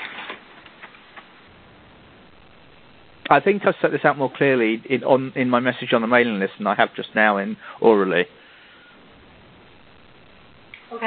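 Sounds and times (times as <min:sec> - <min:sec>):
sheet of paper rustling as it is picked up: 0:00.0 - 0:01.3
speech: 0:03.3 - 0:08.4.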